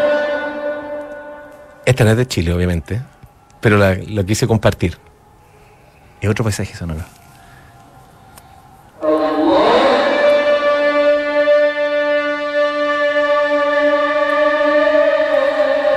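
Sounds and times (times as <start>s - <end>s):
sustained wailing tone in Istanbul city at dawn: 0.0s - 5.0s, 8.9s - 15.9s
speech: 1.9s - 5.1s, 6.2s - 7.2s.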